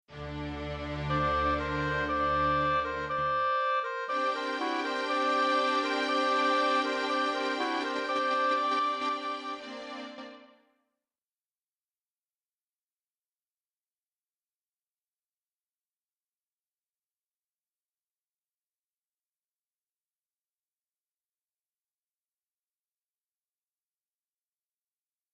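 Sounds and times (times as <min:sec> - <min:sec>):
clarinet: 0:00.1 - 0:10.7
oboe: 0:00.4 - 0:10.6.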